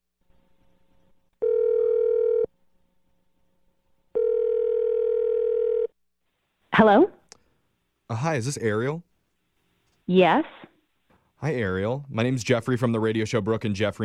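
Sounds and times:
phone ringback tones: 1.4 - 2.5, 4.2 - 5.9
speech: 6.8 - 7.2, 8.1 - 9.1, 10.1 - 10.6, 11.4 - 14.0.

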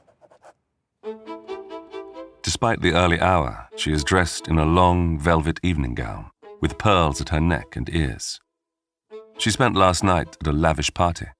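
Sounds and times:
pen scribbling across a sheet of paper: 0.0 - 0.6
speech: 2.5 - 8.4, 9.4 - 11.3.

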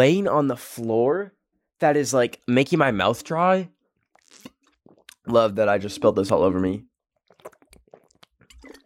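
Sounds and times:
speech: 0.0 - 4.5, 5.3 - 7.6
person gulping water: 4.1 - 5.4, 7.2 - 8.8.

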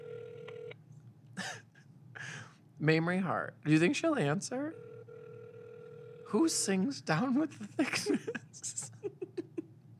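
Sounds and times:
telephone ringing tone over speakerphone: 0.0 - 0.8, 4.7 - 6.4
speech: 2.8 - 5.0, 6.3 - 9.2.

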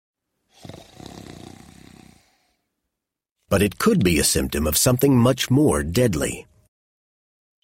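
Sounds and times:
man's long rattling snore: 0.5 - 2.7
speech: 3.5 - 6.5.

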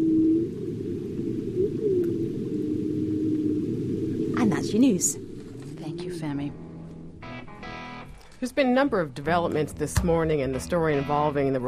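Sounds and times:
humpback whale song with long sliding tonal moans: 0.0 - 4.5
dense rumbling underwater background: 0.0 - 7.2
speech: 4.6 - 5.3, 6.0 - 6.6, 8.4 - 11.6.

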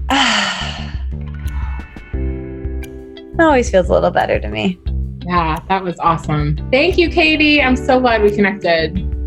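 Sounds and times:
deep breath inhaled and let out: 0.0 - 1.1
speech: 3.4 - 9.1.

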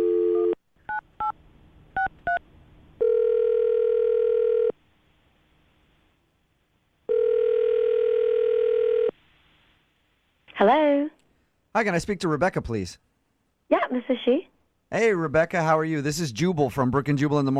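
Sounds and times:
telephone dial tone: 0.0 - 0.6, 3.0 - 4.8, 7.1 - 9.1
phone ringing tones: 0.0 - 1.3, 3.0 - 4.8, 7.1 - 9.1
speech: 11.8 - 13.1, 13.9 - 17.5.

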